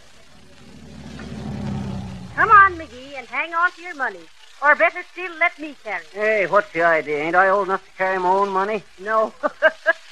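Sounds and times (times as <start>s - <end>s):
heavy vehicle engine rumbling: 0.0s - 3.5s
speech: 3.2s - 9.9s.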